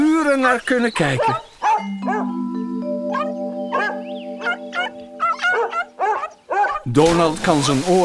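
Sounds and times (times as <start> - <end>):
speech: 0.4 - 1.9, 6.9 - 8.0
several big hairy dogs barking in a swimming pool: 1.2 - 2.4, 3.1 - 6.9
steady held musical tone: 1.8 - 6.5.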